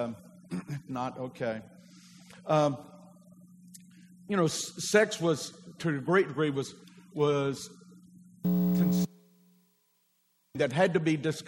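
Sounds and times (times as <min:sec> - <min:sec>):
speech: 0:00.0 - 0:03.0, 0:04.3 - 0:07.8, 0:08.4 - 0:09.1, 0:10.6 - 0:11.4
steady low electrical hum from an audio system: 0:00.0 - 0:11.4.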